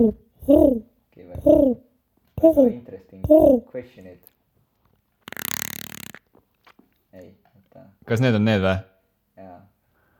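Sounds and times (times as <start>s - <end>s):
speech: 0.0s - 0.8s, 2.4s - 4.2s, 8.1s - 8.9s
person imitating pigeon cooing: 0.0s - 3.7s.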